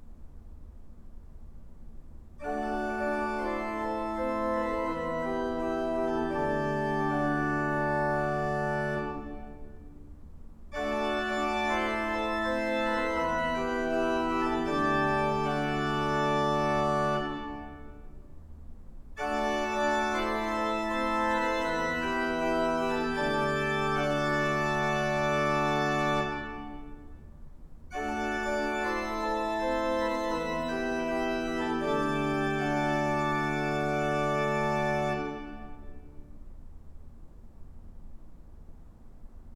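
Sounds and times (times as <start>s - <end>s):
organs playing great chorus: 2.4s - 9.8s, 10.8s - 18.0s, 19.2s - 27.0s, 27.9s - 36.1s.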